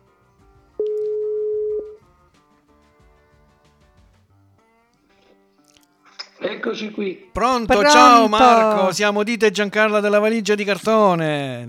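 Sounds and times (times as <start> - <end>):
soft music bed: 0.0 - 10.7
telephone ringback tone of outgoing call: 0.8 - 2.0
speech: 6.6 - 11.6.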